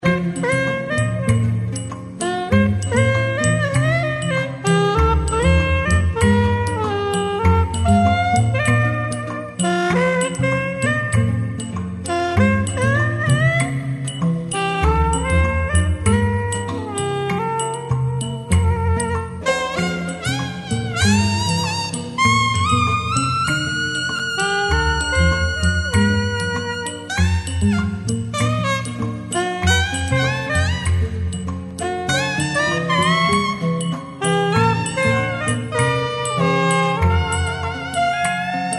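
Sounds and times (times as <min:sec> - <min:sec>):
wooden saxophone playing: 0:00.0 - 0:38.7.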